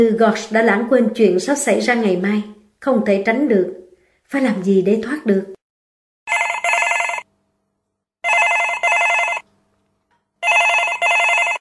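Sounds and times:
speech: 0.0 - 5.6
telephone bell ringing with bright metallic trills: 6.3 - 7.3, 8.2 - 9.5, 10.4 - 11.5.

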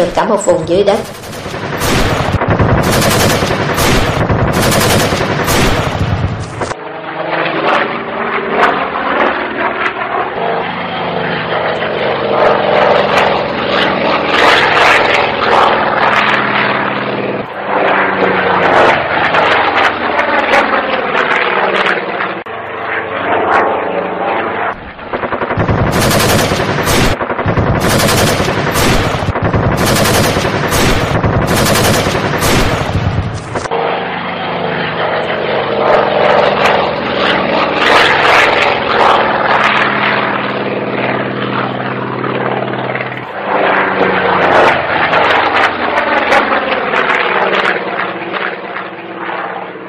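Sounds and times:
speech: 0.0 - 1.2
propeller aircraft engine droning: 0.0 - 49.8
gunship firing six-barrel machine guns: 0.9 - 6.8, 25.2 - 33.7.

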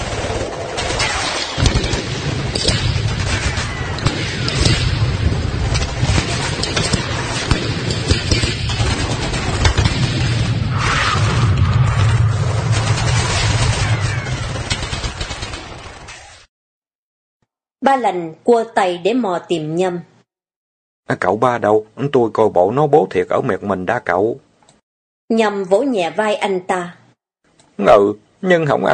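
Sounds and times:
heavy explosion booms: 0.0 - 16.1
gunfire from large and small guns: 0.0 - 16.4
low rumbling roar: 1.8 - 14.7
speech: 17.9 - 20.1, 21.1 - 24.4, 25.3 - 27.0, 27.8 - 28.9.

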